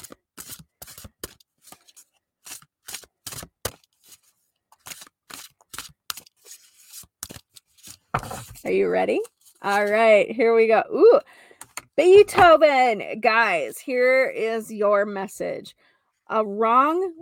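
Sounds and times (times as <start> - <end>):
deck of music oracle cards being shuffled: 0.0 - 10.1
speech: 8.7 - 11.3, 12.0 - 17.1.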